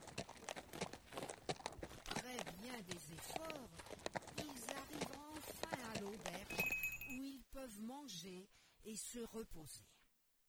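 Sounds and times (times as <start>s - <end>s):
donkey hooves clip-clopping on hard ground: 0.0s - 7.2s
speech: 2.6s - 4.2s, 7.6s - 10.0s.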